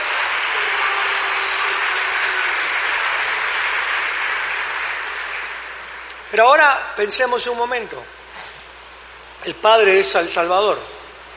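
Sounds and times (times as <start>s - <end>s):
large crowd applauding loudly: 0.0s - 6.3s
speech: 6.3s - 8.2s, 9.4s - 11.0s.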